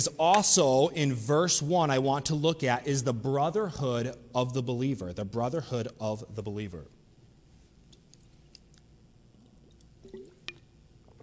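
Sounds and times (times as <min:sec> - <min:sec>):
speech: 0:00.0 - 0:07.0
person drinking water: 0:08.1 - 0:11.2.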